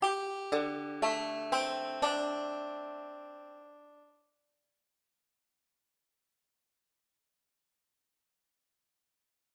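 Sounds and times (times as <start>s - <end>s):
d7sus4 chord on a five-string banjo: 0.0s - 4.1s.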